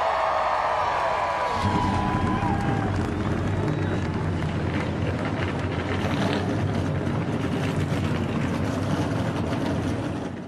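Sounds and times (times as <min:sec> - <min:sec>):
pack of race car engines starting and revving at a grand prix: 0:00.0 - 0:10.4.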